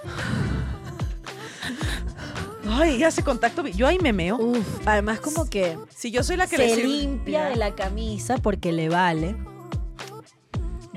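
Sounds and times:
woman breathing heavily: 0.0 - 2.6
speech: 2.7 - 9.5.

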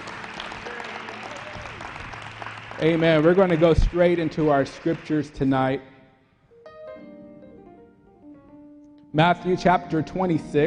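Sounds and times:
church congregation clapping hands: 0.0 - 5.7
speech: 2.8 - 5.9, 9.2 - 10.6.

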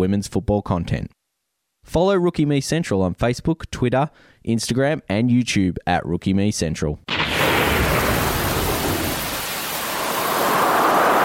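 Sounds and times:
speech: 0.0 - 1.2, 1.8 - 7.1
deep rumble of thunder: 7.1 - 11.2
steady heavy rain in a thunderstorm: 7.1 - 11.2.

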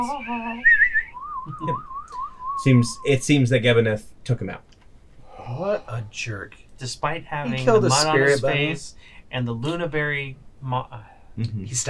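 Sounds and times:
speech: 0.0 - 0.6, 1.5 - 1.9, 2.6 - 4.7, 5.5 - 11.8
person whistling to summon a mount: 0.4 - 3.2.

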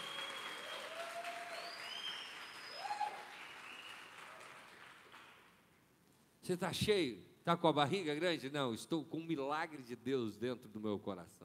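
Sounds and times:
audience applauding: 0.0 - 5.5
speech: 6.5 - 11.4.

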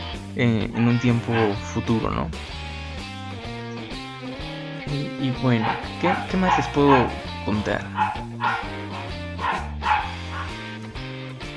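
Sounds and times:
speech: 0.4 - 2.6, 4.9 - 9.7
playful dog barking: 1.2 - 1.6, 5.3 - 10.7.

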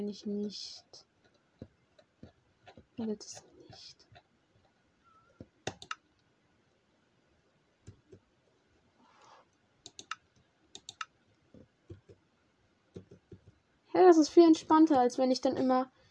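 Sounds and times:
speech: 0.0 - 1.1, 3.0 - 4.1, 14.0 - 16.0
computer keyboard keys being pressed during a game: 5.6 - 6.0, 9.8 - 11.1.

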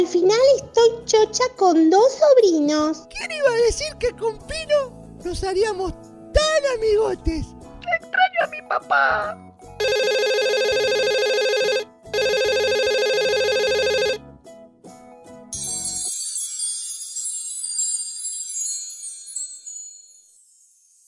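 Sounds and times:
speech: 0.0 - 10.3
telephone ringing in long electronic bursts: 9.8 - 14.2
bright shimmering tinkle: 15.6 - 21.0.

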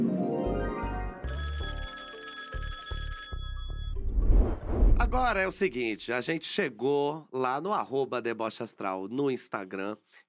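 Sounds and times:
upbeat phone-call themed segment jingle music: 0.4 - 4.2
shrill telephone bell ringing: 1.2 - 4.0
speech: 5.1 - 10.2.

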